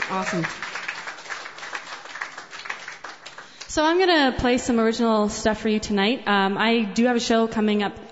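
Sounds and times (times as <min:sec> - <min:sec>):
small crowd applauding: 0:00.0 - 0:03.7
speech: 0:00.1 - 0:00.9, 0:03.7 - 0:08.1.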